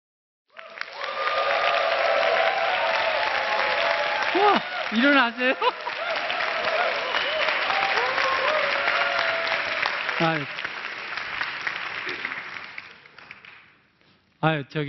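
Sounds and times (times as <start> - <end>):
large audience applause: 0.5 - 13.8
voices and cheers: 0.6 - 10.6
speech: 4.4 - 6.0, 10.2 - 10.7, 14.4 - 14.8.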